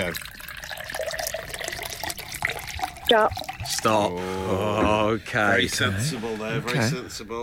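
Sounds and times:
speech: 0.0 - 0.3, 3.1 - 7.4
liquid pouring into a nondescript vessel: 0.0 - 5.1.

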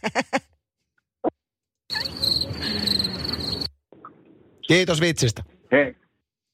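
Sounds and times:
crickets chirping: 1.9 - 3.8
speech: 4.7 - 6.0.

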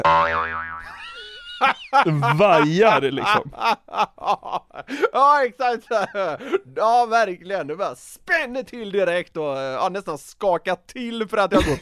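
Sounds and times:
springy cartoon boing wobbling in pitch: 0.0 - 1.0
laughter: 0.8 - 6.6, 11.5 - 11.8
speech: 1.6 - 11.8.

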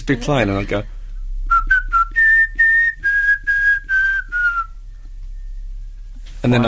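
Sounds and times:
speech: 0.1 - 1.0, 6.4 - 6.6
person whistling a TV theme tune: 1.5 - 4.8.

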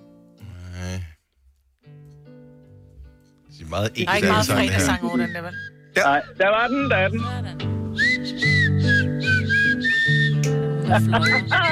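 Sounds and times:
speech: 3.5 - 7.6, 10.9 - 11.6
laughter: 4.1 - 5.2, 10.8 - 11.6
man blowing a shrill reedy whistle on a grass blade: 8.0 - 10.6.

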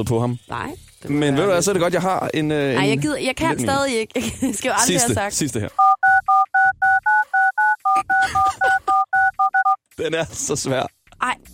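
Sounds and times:
speech: 0.0 - 5.9, 10.0 - 11.4
telephone keypad dialing tones for a long phone number: 5.8 - 9.8.

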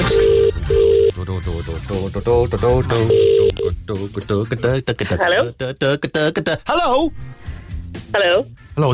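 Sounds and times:
ringback tone of an outgoing phone call: 0.0 - 1.2, 3.1 - 3.7
speech: 1.4 - 8.9.

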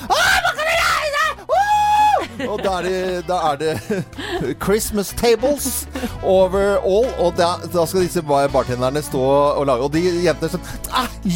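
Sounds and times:
voice imitating high-pitched drawn-out shrieks of partying women: 0.0 - 2.2
laughter: 1.9 - 4.6
speech: 2.4 - 11.3.

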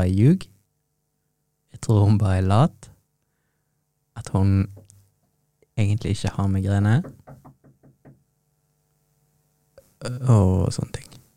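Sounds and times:
speech: 0.0 - 0.5, 1.8 - 2.9, 4.2 - 4.8, 5.8 - 7.2, 10.0 - 11.1
steady low hum: 0.0 - 11.3
knocking on a door: 4.7 - 4.9, 6.9 - 8.3.

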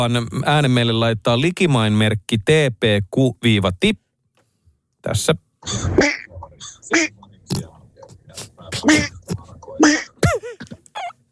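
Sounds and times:
speech: 0.0 - 4.0, 5.0 - 7.2, 8.7 - 9.2
human voice imitating a cartoon duck nephew's quacking speech: 5.6 - 7.2, 8.7 - 10.4.

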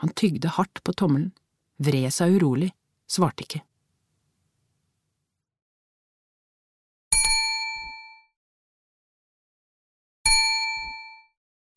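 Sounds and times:
speech: 0.0 - 3.7
bright metallic doorbell dings: 7.1 - 8.3, 10.3 - 11.3.

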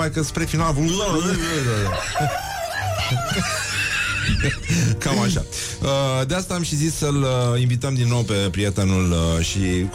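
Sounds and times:
speech: 0.0 - 9.9
laughter: 1.3 - 5.0
rooster crowing: 1.9 - 3.3.

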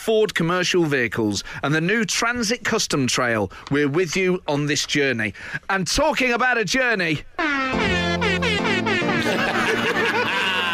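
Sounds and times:
speech: 0.0 - 7.9
air horn playing a jaunty melody: 7.4 - 9.8
laughter: 7.6 - 10.7.

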